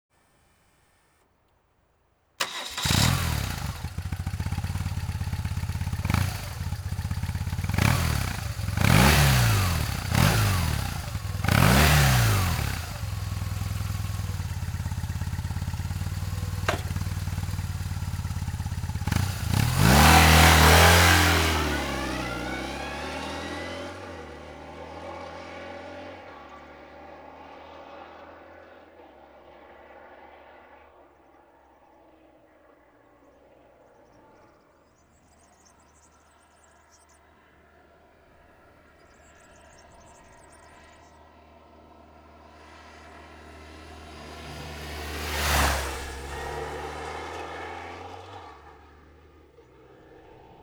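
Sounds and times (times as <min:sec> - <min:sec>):
BMW R 1200 C motorcycle engine: 0:02.4 - 0:28.0, 0:42.5 - 0:50.6.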